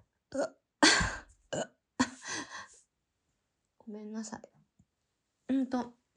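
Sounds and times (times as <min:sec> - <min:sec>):
speech: 0:00.3 - 0:01.8, 0:03.9 - 0:04.5, 0:05.5 - 0:06.0
person burping: 0:00.4 - 0:01.8.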